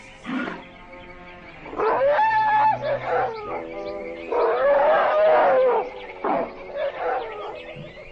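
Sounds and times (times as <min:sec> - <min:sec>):
Indian elephants groaning bellows while bathing: 0:00.0 - 0:08.0
herd of Indian elephants trumpeting while bathing: 0:00.1 - 0:00.8, 0:01.6 - 0:07.8.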